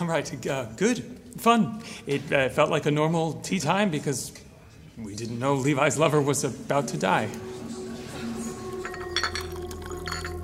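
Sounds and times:
speech: 0.1s - 4.4s, 5.0s - 7.6s
faint murmur: 4.1s - 9.2s
teacups clinking together in a toast: 8.1s - 10.4s.

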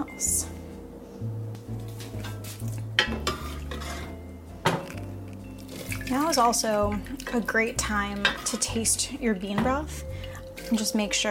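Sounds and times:
low steady hum: 0.0s - 11.2s
speech: 0.2s - 0.5s, 6.1s - 10.1s, 10.7s - 11.2s
kitchen bowls and utensils clattering: 2.0s - 11.2s
cooked bean liquid draining into a bowl: 5.6s - 7.6s.

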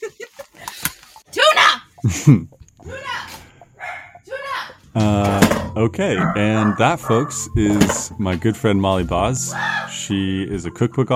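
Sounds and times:
speech: 2.0s - 3.0s, 5.0s - 11.1s
dog barking and yapping: 3.8s - 4.2s, 6.2s - 7.4s.

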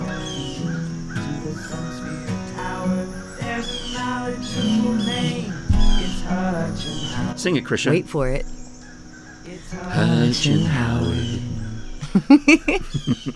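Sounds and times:
crows cawing: 0.0s - 7.4s, 8.2s - 13.3s
low thump: 5.7s - 6.4s
speech: 6.7s - 8.6s, 9.7s - 11.5s, 12.2s - 13.3s
laughter: 9.8s - 13.3s.

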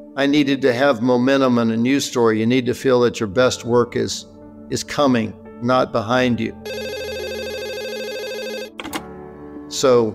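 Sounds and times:
speech: 0.2s - 6.9s, 9.8s - 10.1s
telephone ringing with electronic warbling trill: 6.6s - 9.1s.

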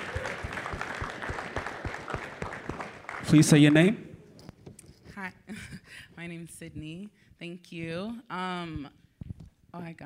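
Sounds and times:
audience applause at a talk with a question-and-answer session: 0.0s - 4.0s
speech: 3.3s - 4.0s, 6.4s - 9.0s, 9.8s - 10.0s.

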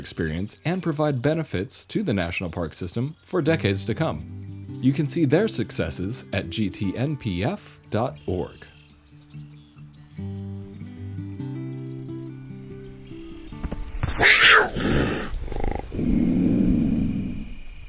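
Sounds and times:
speech: 0.0s - 8.7s
soft musical tones: 3.4s - 13.6s
mountain lion snarling: 14.1s - 17.4s
mountain lion rumbling growl: 14.6s - 17.4s.

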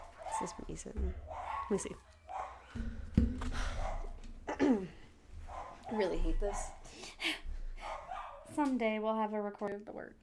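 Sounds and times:
dog barking: 0.0s - 2.8s, 3.7s - 4.2s, 5.4s - 6.9s, 7.8s - 8.5s
dog whiny yelp: 0.0s - 2.8s, 5.4s - 6.8s, 7.8s - 8.5s
speech: 0.4s - 2.2s, 2.8s - 3.5s, 5.9s - 6.8s, 8.6s - 10.2s.

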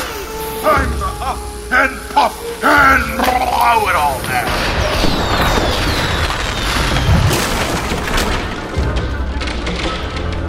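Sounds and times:
crackling bursts of fireworks: 0.0s - 10.4s
fireworks explosives detonating on a wooden drawbridge: 3.0s - 9.3s
splintering debris and crashing wood of a wooden drawbridge: 3.2s - 10.3s.

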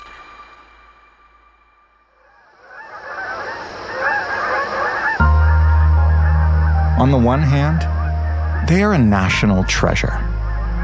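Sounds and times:
Canada geese honking: 2.1s - 10.8s
deep steady low tone: 5.2s - 10.8s
speech: 7.0s - 8.0s, 8.6s - 10.3s.

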